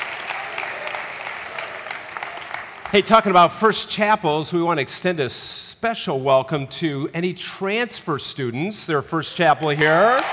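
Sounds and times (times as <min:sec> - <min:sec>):
audience clapping at a college chapel service: 0:00.0 - 0:03.5, 0:09.6 - 0:10.3
speech: 0:02.9 - 0:10.3.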